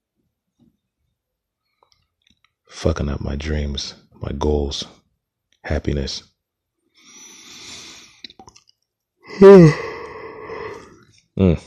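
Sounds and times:
speech: 0:02.8 - 0:05.0, 0:05.7 - 0:06.3, 0:09.4 - 0:09.8, 0:11.4 - 0:11.6
person yawning with a voiced wavering groan: 0:09.3 - 0:11.5.

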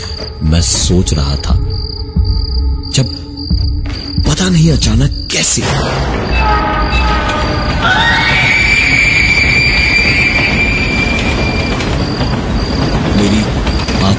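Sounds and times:
train passing on the tracks: 0:00.0 - 0:14.1
speech: 0:00.4 - 0:01.7, 0:02.9 - 0:03.2, 0:04.4 - 0:07.1
high train wheel squeal: 0:06.2 - 0:14.1.

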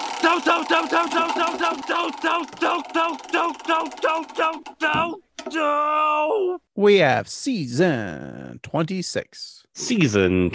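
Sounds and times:
spinning prize wheel sound effect with bright tonal blips: 0:00.0 - 0:05.6
speech: 0:00.2 - 0:10.5.

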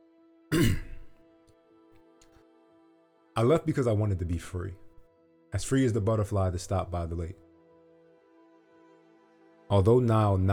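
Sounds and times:
throat clearing: 0:00.5 - 0:01.2
speech: 0:03.4 - 0:04.9, 0:05.5 - 0:07.4, 0:09.7 - 0:10.5.

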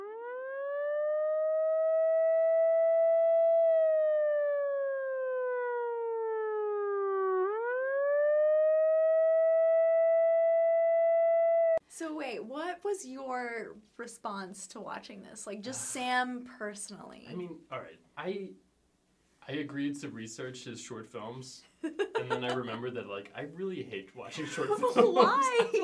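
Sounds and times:
loud continuous wailing siren: 0:00.0 - 0:11.8
speech: 0:12.2 - 0:18.6, 0:19.5 - 0:25.8
laughter: 0:21.8 - 0:23.2, 0:24.2 - 0:25.8.

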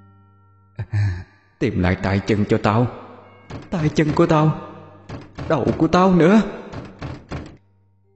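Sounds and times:
speech: 0:01.6 - 0:03.0, 0:03.7 - 0:04.7, 0:05.5 - 0:06.6
heavy pounding on a door: 0:03.5 - 0:04.4, 0:05.0 - 0:07.6.

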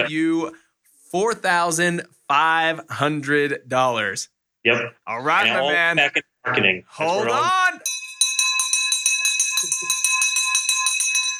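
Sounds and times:
speech: 0:00.0 - 0:07.9
victory bell clanging rapidly to celebrate a sale: 0:07.8 - 0:11.3.

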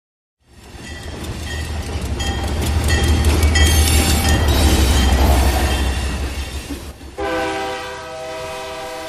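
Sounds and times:
train rumbling past in Matías Romero Oaxaca Mexico: 0:00.4 - 0:09.0
long loud train horn blast: 0:07.2 - 0:09.0.

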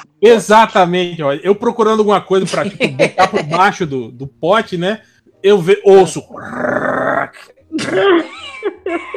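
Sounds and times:
speech: 0:00.2 - 0:09.1
voice imitating a spider dragging a dog's bowl across the floor: 0:06.3 - 0:08.0.

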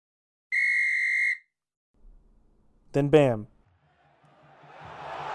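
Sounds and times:
referee's whistle blast: 0:00.5 - 0:01.5
speech: 0:02.9 - 0:03.5.

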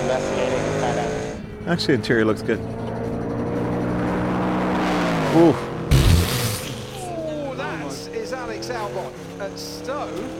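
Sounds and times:
racing car engine roaring with quick gear changes: 0:00.0 - 0:10.3
speech: 0:00.1 - 0:00.6, 0:01.7 - 0:02.9, 0:05.3 - 0:05.7.

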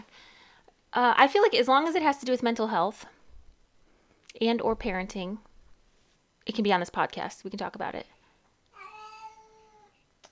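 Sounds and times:
speech: 0:01.0 - 0:03.2, 0:04.4 - 0:05.5, 0:06.4 - 0:08.1
domestic cat meowing: 0:08.8 - 0:10.0.

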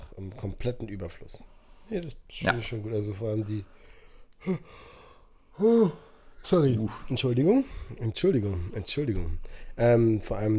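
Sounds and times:
speech: 0:00.4 - 0:04.9, 0:05.6 - 0:10.5
person yawning: 0:05.6 - 0:06.2.

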